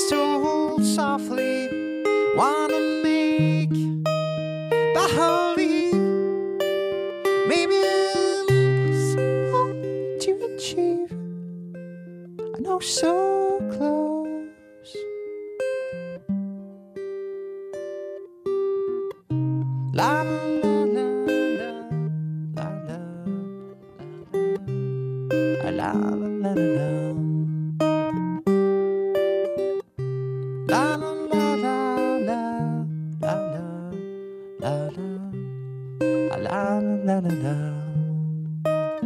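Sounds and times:
person singing an acoustic song live: 0:00.0 - 0:04.1, 0:04.7 - 0:11.4, 0:12.4 - 0:15.1, 0:19.6 - 0:23.9, 0:25.3 - 0:27.7, 0:30.6 - 0:39.0
strummed acoustic accompaniment: 0:00.0 - 0:39.0
speech: 0:00.8 - 0:01.8, 0:02.4 - 0:04.1, 0:12.8 - 0:13.3.

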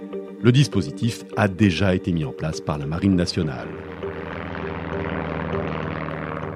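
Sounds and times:
speech: 0:00.4 - 0:04.0
Breguet Atlantique propeller patrol aircraft of the French Navy flying: 0:01.8 - 0:06.5.

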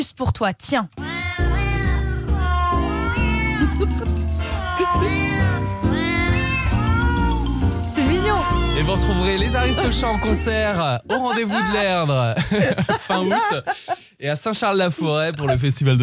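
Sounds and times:
speech: 0:00.0 - 0:01.0, 0:03.8 - 0:05.9, 0:08.3 - 0:16.0
cat meows arranged into a song melody: 0:01.0 - 0:10.5
steady musical backing: 0:01.0 - 0:12.0
laughter: 0:03.2 - 0:05.6, 0:08.0 - 0:14.1.

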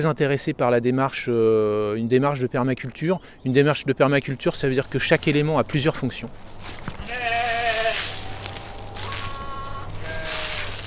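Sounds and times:
speech: 0:00.0 - 0:07.4
low outdoor hum: 0:01.1 - 0:10.8
sheep bleating: 0:07.0 - 0:10.8.

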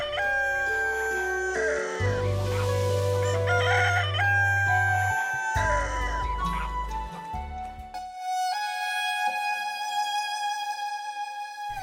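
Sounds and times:
rooster crowing: 0:00.0 - 0:02.1, 0:03.2 - 0:06.4
low sustained music: 0:00.0 - 0:11.8.

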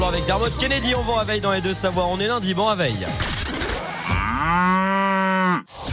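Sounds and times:
speech: 0:00.2 - 0:03.4, 0:04.1 - 0:05.8
cow mooing: 0:03.9 - 0:05.7.

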